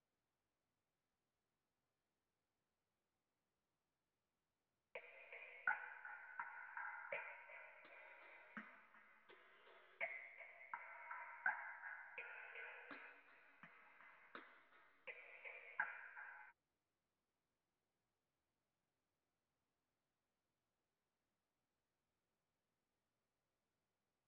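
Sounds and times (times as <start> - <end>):
166 BPM B minor percussion loop: 5.0 - 16.5.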